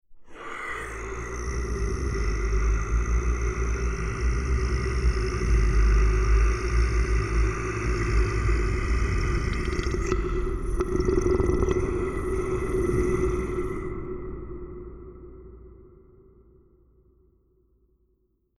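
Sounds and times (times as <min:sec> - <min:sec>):
monster growling: 0:00.3 - 0:14.1.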